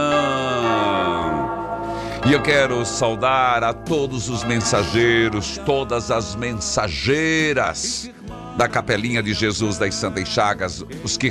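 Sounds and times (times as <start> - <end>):
church bell ringing: 0.0 - 7.2
speech: 2.2 - 11.3.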